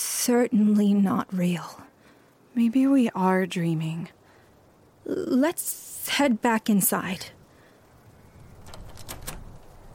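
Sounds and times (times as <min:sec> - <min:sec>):
faint hiss: 0:00.0 - 0:09.9
speech: 0:00.2 - 0:01.9, 0:02.6 - 0:04.2, 0:05.0 - 0:07.4
stuck doorknob jiggled and rattled: 0:08.6 - 0:09.9.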